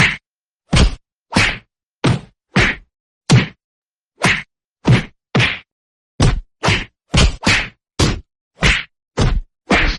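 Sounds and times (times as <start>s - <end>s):
punches: 0.0s - 3.6s, 4.2s - 9.9s.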